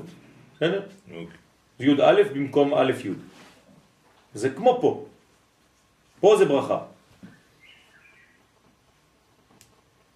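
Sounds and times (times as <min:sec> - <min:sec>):
speech: 0:00.0 - 0:03.4, 0:04.4 - 0:05.1, 0:06.2 - 0:06.9
bird chirping: 0:07.2 - 0:08.6.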